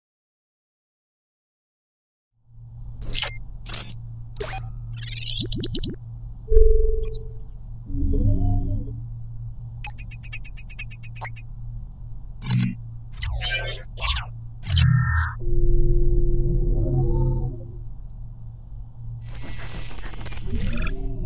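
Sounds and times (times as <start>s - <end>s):
sci-fi robotic UI sounds: 4.4s - 9.0s, 9.8s - 11.4s, 12.4s - 21.2s.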